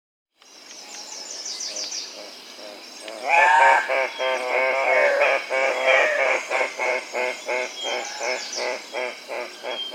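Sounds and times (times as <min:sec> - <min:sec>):
Andean cock-of-the-rock calling with a loud rough squawk in South America: 0:03.2 - 0:09.9.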